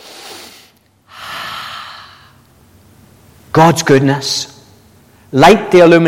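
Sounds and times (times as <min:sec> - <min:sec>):
deep breath drawn in through the mouth: 0:00.0 - 0:02.4
speech: 0:03.6 - 0:04.5, 0:05.3 - 0:06.0.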